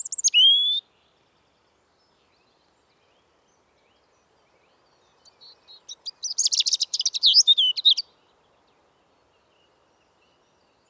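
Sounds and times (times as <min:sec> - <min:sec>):
European robin Erithacus rubecula song: 0:00.0 - 0:00.8, 0:05.8 - 0:08.0.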